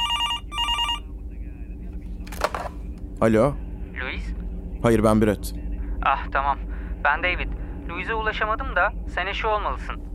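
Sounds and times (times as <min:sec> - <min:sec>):
telephone ringing electronically: 0:00.0 - 0:01.0
low rumble: 0:00.0 - 0:10.1
speech: 0:03.2 - 0:03.6, 0:04.2 - 0:10.1.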